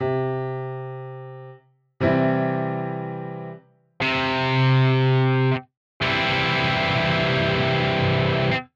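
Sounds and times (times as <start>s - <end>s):
piano: 0.0s - 8.6s
guitar power chord: 4.0s - 8.7s.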